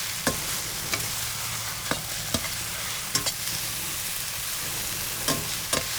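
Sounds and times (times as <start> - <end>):
cooking sizzle: 0.0 - 5.9.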